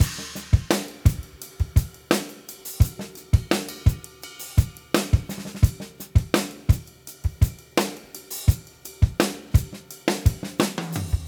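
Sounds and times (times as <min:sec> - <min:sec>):
pop rock drums at moderate tempo: 0:00.0 - 0:11.2.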